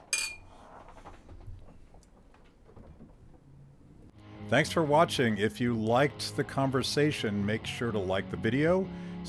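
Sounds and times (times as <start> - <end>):
beer glasses clinking in a toast: 0.0 - 0.6
faint clatter: 0.0 - 4.1
speech: 4.5 - 9.2.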